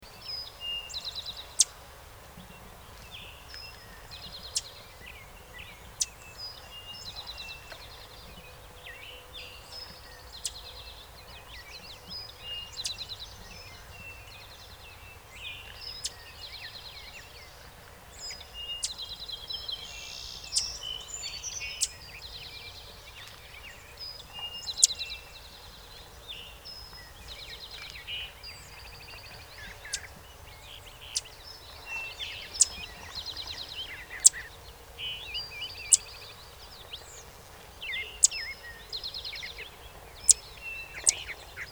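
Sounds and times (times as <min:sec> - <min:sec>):
Golden-winged Warbler Vermivora chrysoptera: 0:00.0 - 0:41.7.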